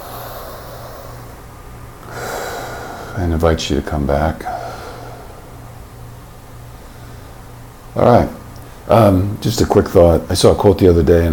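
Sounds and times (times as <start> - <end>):
deep cleansing breath: 0.0 - 3.3, 4.4 - 5.8, 6.7 - 7.5
speech: 3.2 - 4.6, 8.0 - 11.3.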